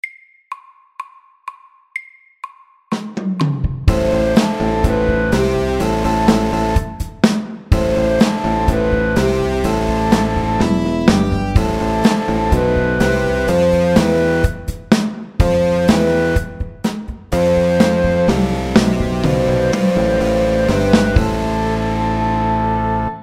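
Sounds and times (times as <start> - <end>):
metal rock music: 3.9 - 7.2, 7.8 - 23.0.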